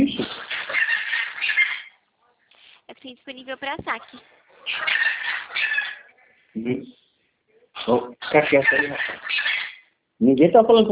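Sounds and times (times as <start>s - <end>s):
pet maritaca parakeet squawking: 0.2s - 6.4s, 7.8s - 10.0s
speech: 3.1s - 5.2s, 6.6s - 7.0s, 7.8s - 9.2s, 10.2s - 10.8s.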